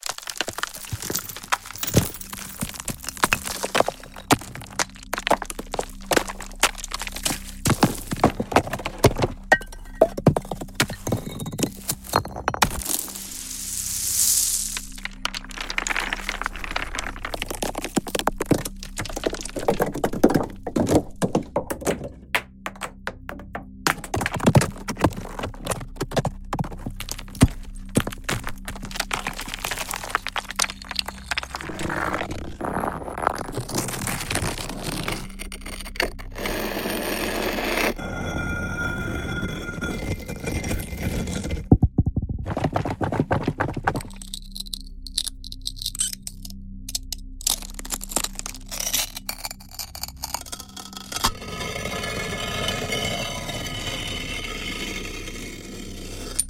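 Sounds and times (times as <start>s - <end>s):
stones and debris: 0.0s - 56.4s.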